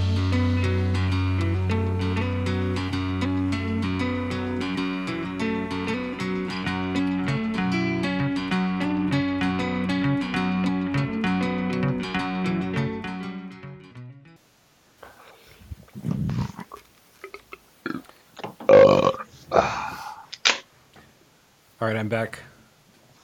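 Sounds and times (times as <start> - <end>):
steady music: 0.0 - 14.4
person belching: 16.1 - 20.2
speech: 21.9 - 22.5.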